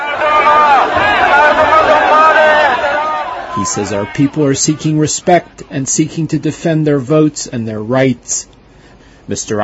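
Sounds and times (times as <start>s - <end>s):
large protest crowd cheering: 0.0s - 5.4s
speech: 3.6s - 8.6s, 9.3s - 9.6s.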